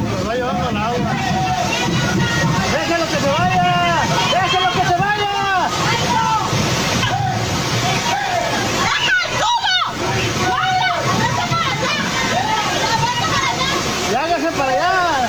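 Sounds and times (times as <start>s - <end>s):
floodwater rushing through a street: 0.0s - 15.2s
people calling out: 0.5s - 15.2s.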